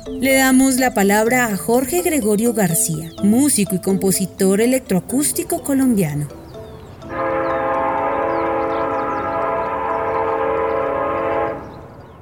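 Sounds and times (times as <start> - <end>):
faint birdsong: 0.0 - 12.2
speech: 0.1 - 6.4
train horn blast: 7.1 - 11.9.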